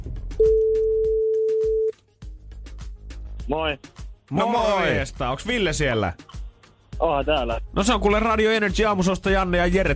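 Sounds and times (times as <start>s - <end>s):
telephone ringback tone while a call is being dialed: 0.4s - 1.9s
speech: 3.5s - 6.4s, 7.0s - 9.9s.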